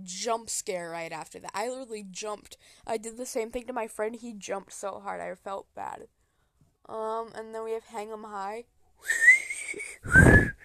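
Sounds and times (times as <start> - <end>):
speech: 0.0 - 6.2, 6.9 - 10.4
whistled melody in a song: 9.0 - 10.6.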